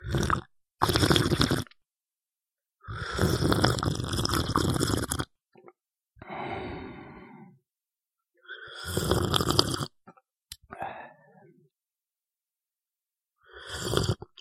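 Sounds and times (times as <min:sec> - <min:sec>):
slurping: 0:00.0 - 0:01.8, 0:03.0 - 0:05.3, 0:08.7 - 0:10.0.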